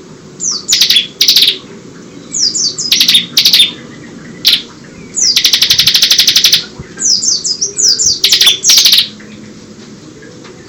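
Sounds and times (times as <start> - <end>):
Bar-winged prinia buzzing and trilling: 0.4 - 1.7, 2.3 - 9.2.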